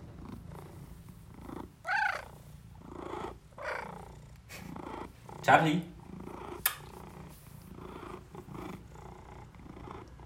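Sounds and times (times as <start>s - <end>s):
cat purring: 0.0s - 10.2s
speech: 5.5s - 5.9s
sharp click: 6.6s - 6.9s.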